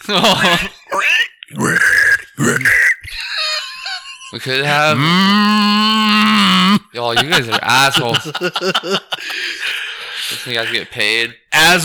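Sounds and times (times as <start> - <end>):
laughter: 0.0 - 0.8, 2.4 - 6.3, 7.0 - 10.9
speech: 0.1 - 1.9, 4.4 - 6.2, 7.0 - 9.6, 10.2 - 11.8
person imitating pig squeals and grunts: 0.9 - 6.9.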